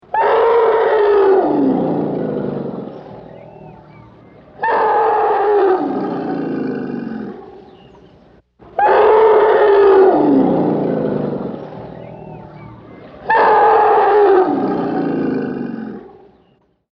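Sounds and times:
elephant trumpeting: 0:00.1 - 0:07.6, 0:08.8 - 0:16.2.

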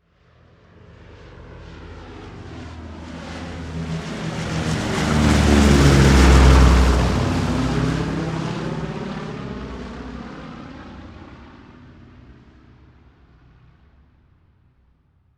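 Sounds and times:
B-17 Bomber military airplane passing by: 0:00.1 - 0:13.7.

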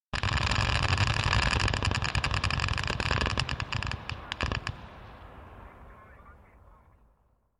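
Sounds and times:
distant 5.6mm gas operated rifles firing on automatic by a platoon: 0:00.1 - 0:06.9.

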